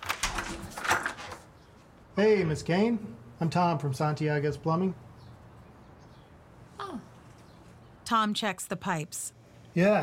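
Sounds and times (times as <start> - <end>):
door creaking scrape: 0.0 - 1.5
speech: 2.2 - 5.1, 8.1 - 10.0.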